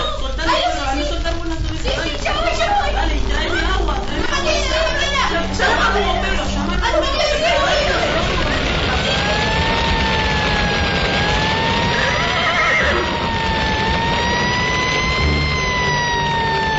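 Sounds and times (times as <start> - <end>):
dense rushing noise: 0.0 - 16.7
horses neighing and whinnying: 12.0 - 13.1.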